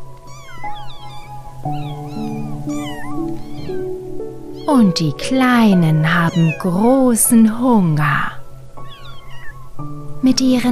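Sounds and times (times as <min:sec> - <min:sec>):
five newborn kittens mewing in high thin cries: 0:00.1 - 0:05.2, 0:06.0 - 0:07.1, 0:08.8 - 0:09.9
speech: 0:01.6 - 0:02.0, 0:04.7 - 0:08.3, 0:10.2 - 0:10.7.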